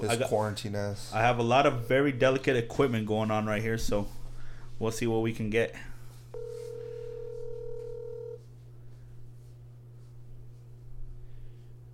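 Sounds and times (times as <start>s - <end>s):
speech: 0.0s - 4.2s, 4.8s - 6.6s
constant low hum: 0.0s - 11.9s
telephone ringing tone heard through a phone line: 6.4s - 8.4s.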